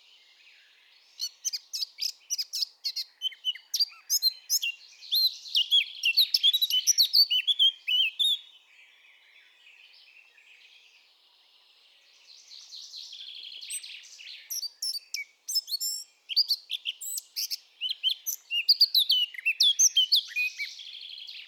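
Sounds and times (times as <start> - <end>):
Eurasian blackcap Sylvia atricapilla singing: 0.9 - 8.7, 12.2 - 21.4.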